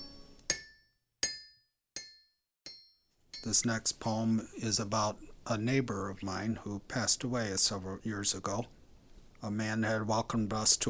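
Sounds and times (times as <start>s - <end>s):
hammer striking steel anvil: 0.0s - 3.7s
speech: 3.4s - 8.8s, 9.4s - 10.8s.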